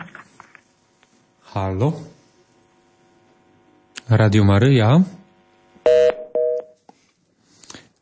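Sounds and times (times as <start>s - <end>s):
speech: 1.5s - 2.2s, 4.1s - 5.2s
telephone line tones on a radio call-in line: 5.8s - 6.8s.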